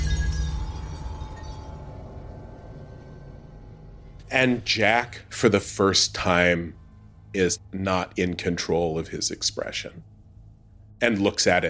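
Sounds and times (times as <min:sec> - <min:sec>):
glass shattering: 0:00.0 - 0:02.0
glass giving off a thin sustained ringing whine: 0:00.0 - 0:04.0
dense low rumble: 0:00.0 - 0:11.0
speech: 0:04.3 - 0:10.1, 0:11.0 - 0:11.6.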